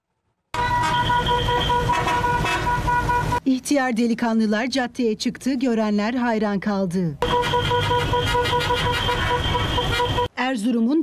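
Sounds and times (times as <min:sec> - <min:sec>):
horns of antique classic cars in a convoy honking on a street: 0:00.6 - 0:03.4, 0:07.2 - 0:10.3
speech: 0:03.5 - 0:07.3, 0:10.5 - 0:11.0.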